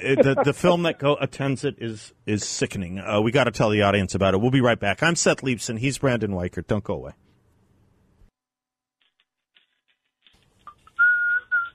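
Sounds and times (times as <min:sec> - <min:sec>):
speech: 0:00.0 - 0:07.3
person whistling along to music: 0:10.9 - 0:11.7.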